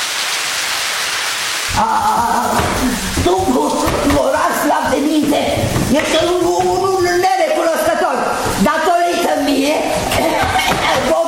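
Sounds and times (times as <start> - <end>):
torrential rain: 0.0 - 11.2
speech: 1.8 - 2.4.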